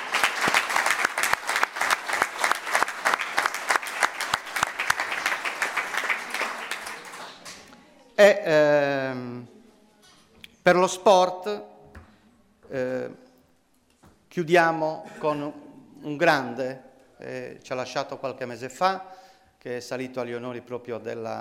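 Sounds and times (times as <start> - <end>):
crowd applauding: 0.0 - 7.7
speech: 8.2 - 9.4, 10.6 - 11.7, 12.7 - 13.2, 14.4 - 21.4.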